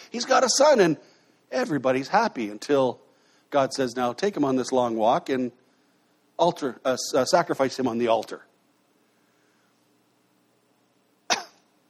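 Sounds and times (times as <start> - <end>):
speech: 0.1 - 5.6, 6.4 - 8.5
cough: 11.3 - 11.7.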